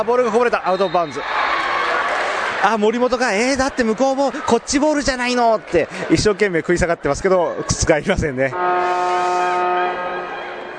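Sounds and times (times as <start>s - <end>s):
speech: 0.0s - 1.4s, 2.6s - 10.0s
basketball game horn blaring: 8.6s - 10.7s.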